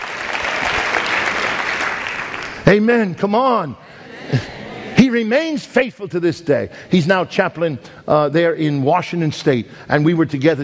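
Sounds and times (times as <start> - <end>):
church congregation applauding during a sermon: 0.0 - 2.9
speech: 2.6 - 4.5, 5.1 - 10.6.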